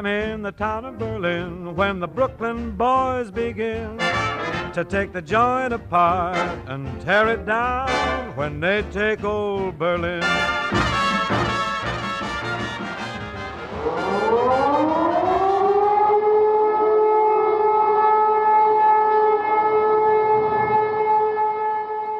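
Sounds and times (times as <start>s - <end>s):
speech: 0.0s - 10.8s
air raid siren winding up into a wail: 10.7s - 22.1s.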